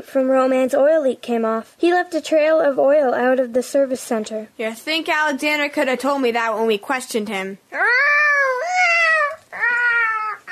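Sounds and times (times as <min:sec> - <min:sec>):
speech: 0:00.0 - 0:08.2
cat yowling loudly and insistently: 0:07.7 - 0:10.5.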